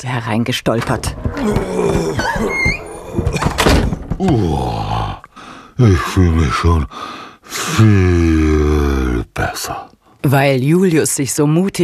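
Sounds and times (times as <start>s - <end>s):
speech: 0.0s - 3.5s, 4.2s - 5.0s, 5.8s - 11.8s
door creaking open: 0.7s - 4.6s
dull thunk: 0.8s - 4.4s.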